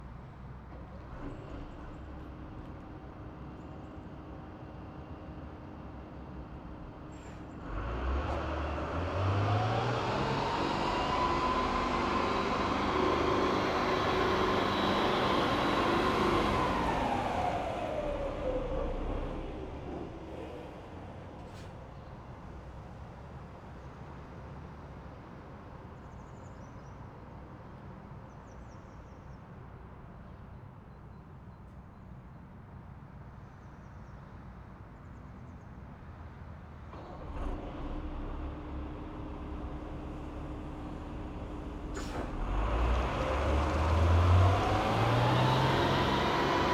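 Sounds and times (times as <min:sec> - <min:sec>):
distant Renault VAB armoured personnel carrier driving fast forward and reverse: 0:06.2 - 0:22.7, 0:36.9 - 0:46.7.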